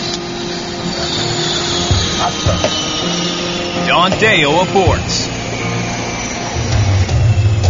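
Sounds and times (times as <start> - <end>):
faint constant tonal hum: 0.0 - 7.6
propeller turbine engine whining on its air starter, unignited: 0.0 - 7.6
speech: 4.0 - 5.2.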